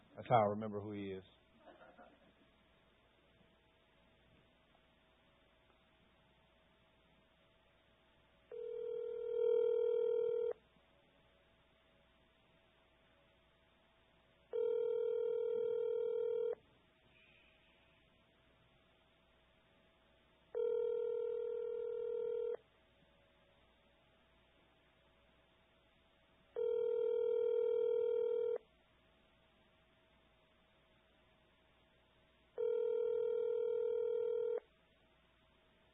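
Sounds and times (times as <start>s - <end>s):
faint hum: 0.0s - 35.9s
speech: 0.2s - 1.4s
telephone ringback tone while a call is placed: 8.5s - 10.6s, 14.5s - 16.6s, 20.5s - 22.6s, 26.6s - 28.6s, 32.6s - 34.7s.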